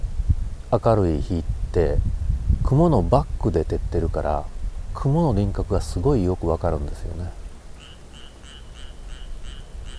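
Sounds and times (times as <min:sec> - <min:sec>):
low constant outdoor hum: 0:00.0 - 0:09.9
speech: 0:00.7 - 0:07.4
frogs croaking at night: 0:07.8 - 0:09.9.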